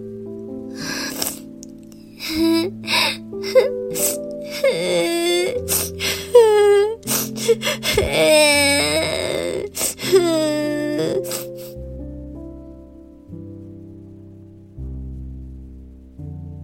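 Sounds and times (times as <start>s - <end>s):
child crying loudly: 2.2s - 11.4s.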